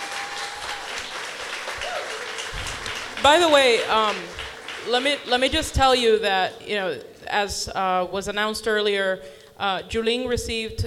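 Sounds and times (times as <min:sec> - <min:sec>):
room full of people applauding: 0:00.0 - 0:05.7
speech: 0:03.2 - 0:10.8.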